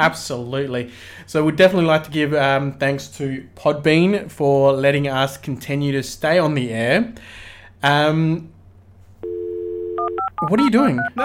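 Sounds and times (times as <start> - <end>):
speech: 0.0 - 8.6, 10.4 - 11.2
steady flat telephone-line tone of an old dial-up modem: 9.2 - 11.2.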